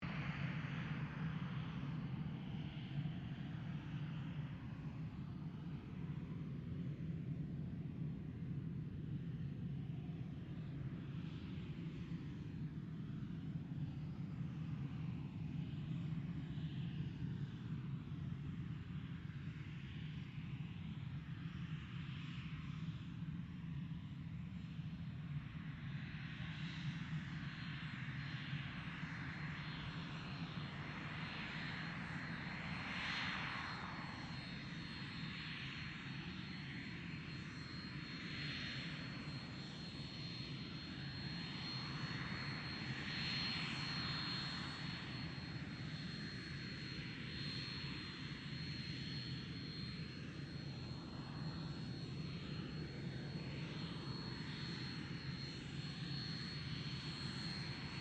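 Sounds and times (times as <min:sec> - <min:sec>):
distant Cessna A-37B Dragonfly jet taxiing: 0:00.1 - 0:57.9.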